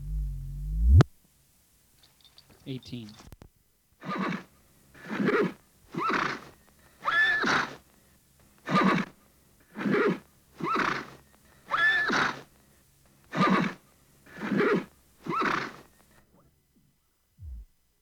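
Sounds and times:
agitated horse whinnying: 4.0 - 4.5, 5.1 - 7.8, 8.7 - 9.1, 9.8 - 12.5, 13.4 - 13.8, 14.4 - 15.9.

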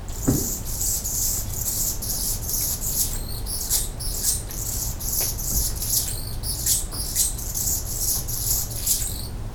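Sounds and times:
hummingbird singing high thin squeaky notes: 0.1 - 9.4.

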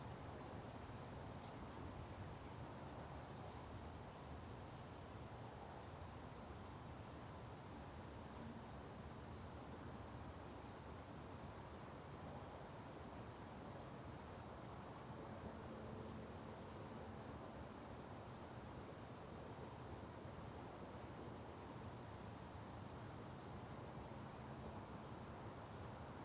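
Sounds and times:
low background hiss: 0.0 - 26.2
outdoor bird chirps: 0.4 - 0.7, 1.4 - 1.8, 2.4 - 2.8, 3.5 - 3.8, 4.7 - 5.0, 5.8 - 6.1, 7.1 - 7.4, 10.7 - 11.0, 11.8 - 12.1, 12.8 - 13.1, 13.8 - 14.1, 15.0 - 15.3, 16.1 - 16.4, 17.2 - 17.5, 18.4 - 18.7, 19.8 - 20.1, 21.0 - 21.3, 21.9 - 22.2, 23.4 - 23.8, 24.6 - 25.0, 25.8 - 26.2.

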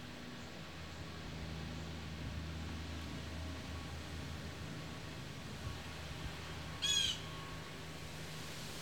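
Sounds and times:
steady low wind rumble in autumn: 0.0 - 8.8
blue jay giving a short harsh call in autumn wind: 6.8 - 7.3.

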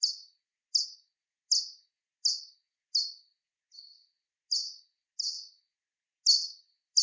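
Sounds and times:
Soprano pipistrelle echolocation pulses: 0.0 - 3.2, 3.8 - 5.5, 6.3 - 7.0.

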